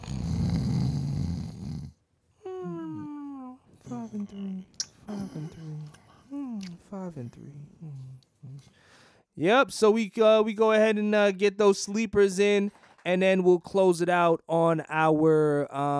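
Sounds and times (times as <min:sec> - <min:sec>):
long rough snore: 0:00.0 - 0:02.0
speech: 0:04.3 - 0:06.0, 0:07.1 - 0:15.9.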